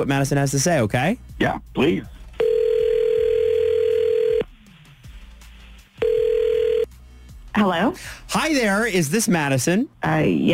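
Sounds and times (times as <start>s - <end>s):
speech: 0.0s - 2.2s, 7.6s - 10.5s
telephone ringback tone from an outgoing call: 2.4s - 4.5s, 6.0s - 6.9s.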